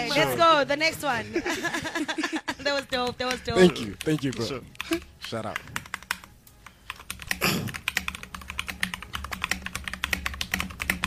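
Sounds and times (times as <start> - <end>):
speech: 0.0 - 5.8
laughter: 1.1 - 3.8
rapid typing on a computer keyboard: 2.8 - 11.0.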